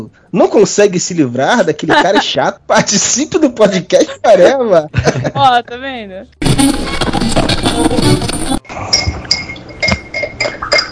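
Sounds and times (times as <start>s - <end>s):
speech: 0.0s - 9.0s
laughter: 1.5s - 5.6s
spoon clinking a glass while stirring a chocolate drink: 8.9s - 10.9s.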